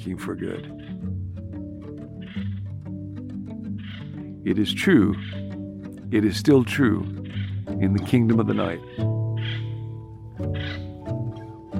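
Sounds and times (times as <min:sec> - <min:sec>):
speech: 0:00.0 - 0:01.1, 0:04.4 - 0:05.4, 0:06.1 - 0:09.6
small crow cawing: 0:00.6 - 0:01.0, 0:02.1 - 0:02.8, 0:03.7 - 0:04.4, 0:05.2 - 0:05.6, 0:07.0 - 0:07.8, 0:08.5 - 0:11.4.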